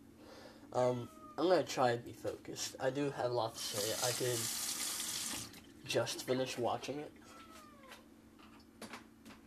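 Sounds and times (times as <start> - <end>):
speech: 0.7 - 4.6, 5.9 - 7.2
female cat meowing at a person: 1.0 - 1.4, 7.2 - 8.1.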